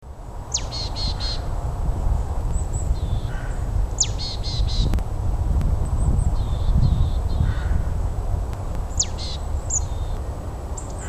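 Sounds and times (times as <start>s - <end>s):
background C cor bird calls: 0.3s - 5.0s, 5.9s - 8.0s, 8.8s - 11.0s
P pal and P mont bird calls: 0.5s - 1.5s, 2.5s - 5.0s, 6.0s - 8.0s, 8.9s - 11.0s.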